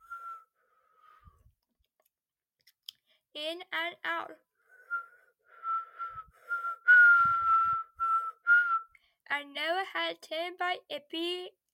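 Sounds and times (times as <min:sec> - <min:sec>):
person whistling a tune: 0:00.0 - 0:00.6, 0:04.7 - 0:09.0
speech: 0:03.4 - 0:04.5, 0:09.3 - 0:11.6.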